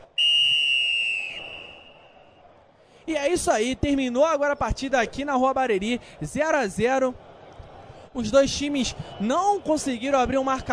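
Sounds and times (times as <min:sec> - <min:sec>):
low outdoor murmur: 0:00.0 - 0:10.7
referee's whistle blast ending a football match: 0:00.2 - 0:02.3
speech: 0:03.1 - 0:07.3, 0:08.2 - 0:10.7.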